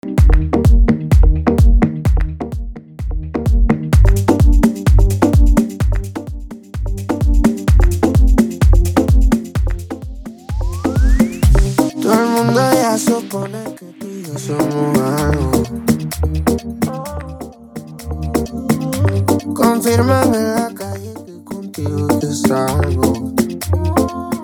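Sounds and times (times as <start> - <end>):
Afro music at 128 bpm: 0.0 - 24.4.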